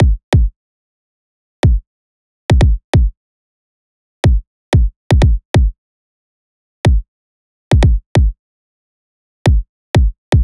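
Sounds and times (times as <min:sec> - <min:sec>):
pop kick drum loop: 0:00.0 - 0:00.5, 0:01.6 - 0:01.8, 0:02.5 - 0:03.1, 0:04.2 - 0:05.7, 0:07.7 - 0:08.3, 0:09.5 - 0:10.4.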